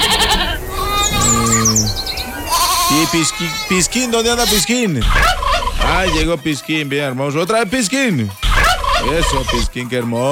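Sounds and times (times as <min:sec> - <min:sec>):
goat bleating during milking on a farm: 0:00.0 - 0:06.3, 0:08.3 - 0:09.8
thin high bird chirps and tweets: 0:00.6 - 0:02.5, 0:03.9 - 0:06.3, 0:07.8 - 0:09.8
speech: 0:03.1 - 0:08.4, 0:09.0 - 0:10.2.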